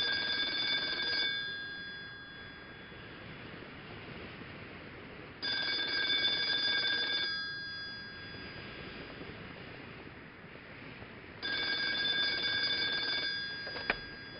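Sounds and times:
telephone ringing with a bright buzzing bell tone: 0:00.0 - 0:03.5, 0:05.4 - 0:09.2, 0:11.4 - 0:14.3.

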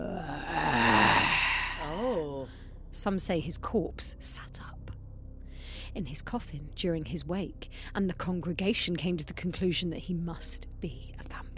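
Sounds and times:
voice imitating an ungodly groaning sound: 0:00.0 - 0:02.4
speech: 0:03.0 - 0:04.8, 0:05.9 - 0:11.4.

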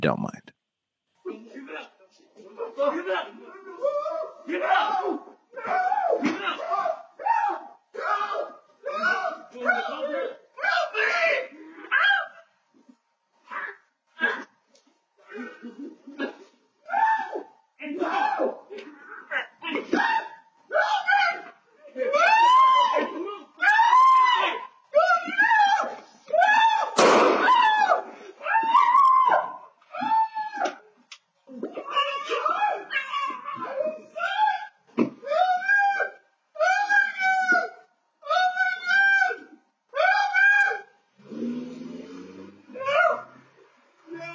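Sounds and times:
speech: 0:00.0 - 0:00.5, 0:04.5 - 0:05.3
people yelling and screaming in a violent struggle during a robbery: 0:02.7 - 0:12.5, 0:16.8 - 0:30.8, 0:31.8 - 0:40.9, 0:42.8 - 0:43.4.

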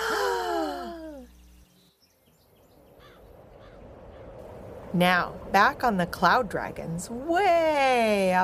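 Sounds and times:
voices gasping in shock: 0:00.0 - 0:01.3
speech: 0:04.9 - 0:08.4.

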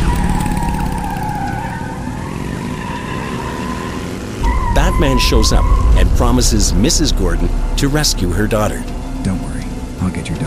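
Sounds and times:
motorbike and car engines roaring in a street chase: 0:00.0 - 0:10.4
tires screeching: 0:00.0 - 0:10.4
speech: 0:05.0 - 0:09.5.

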